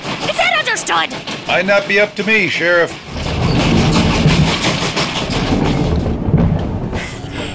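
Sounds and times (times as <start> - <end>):
speech: 0.8 - 3.4
faint rhythmic rattling inside a train carriage: 3.0 - 6.9
moving train rumble heard from inside a carriage: 3.0 - 7.0.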